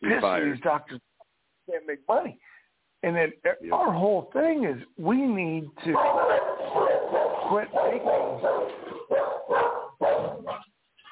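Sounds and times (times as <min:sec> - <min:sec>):
speech: 0:00.1 - 0:01.1, 0:01.7 - 0:10.4
guard dog barking: 0:06.0 - 0:10.7.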